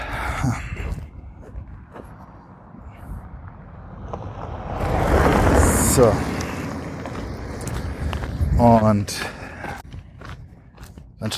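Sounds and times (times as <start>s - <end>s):
wind noise: 0.0s - 11.3s
speech: 0.4s - 0.7s, 6.0s - 6.3s, 8.6s - 9.4s
car passing by outdoors: 2.0s - 8.6s.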